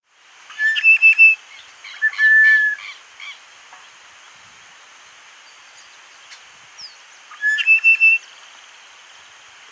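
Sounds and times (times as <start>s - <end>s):
steady high-pitched hiss: 0.1s - 9.7s
bird singing whistles and chirps: 0.5s - 3.0s, 6.8s - 8.4s.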